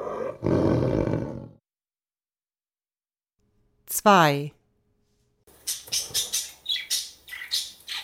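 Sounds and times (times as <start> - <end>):
tiger roaring: 0.0 - 1.6
speech: 4.0 - 4.6
budgerigar chirping: 5.6 - 8.0.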